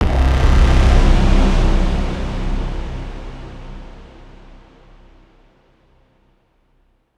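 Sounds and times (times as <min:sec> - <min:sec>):
cinematic trailer synth hit: 0:00.0 - 0:05.1.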